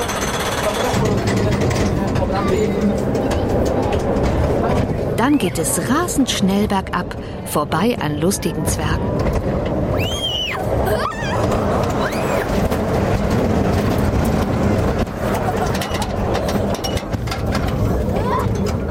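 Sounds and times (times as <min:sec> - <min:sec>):
small ride train rumbling and clattering along its tracks: 0:00.0 - 0:18.9
speech: 0:05.2 - 0:12.7
brief high squeals: 0:10.0 - 0:12.5.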